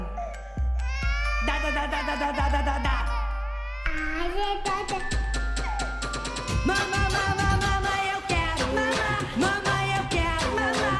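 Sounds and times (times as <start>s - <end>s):
baby wailing: 0.0s - 5.0s, 5.6s - 8.1s
speech: 1.4s - 3.2s, 4.0s - 5.2s, 6.6s - 7.4s
pounding bass beat in funk music: 5.0s - 10.9s.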